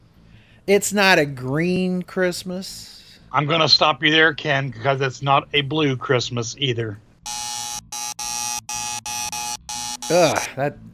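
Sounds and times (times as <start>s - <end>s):
speech: 0.7s - 7.0s, 10.1s - 10.9s
harsh game show wrong-answer buzzer: 7.3s - 10.6s.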